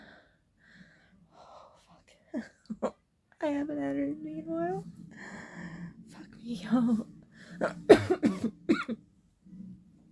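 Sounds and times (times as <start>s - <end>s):
speech: 2.3s - 2.8s, 3.4s - 5.0s, 6.5s - 8.6s
man coughing: 7.9s - 9.0s.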